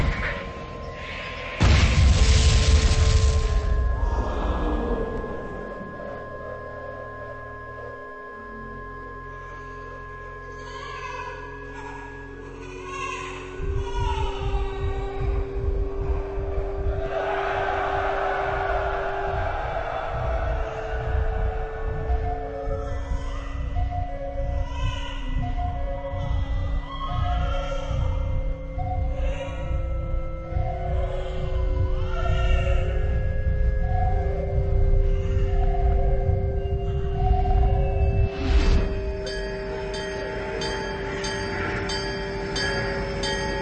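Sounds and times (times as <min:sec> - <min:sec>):
steady sustained humming tones: 0:00.0 - 0:43.5
military bomb explosion: 0:01.6 - 0:04.1
crowd cheering joyfully: 0:17.0 - 0:22.2.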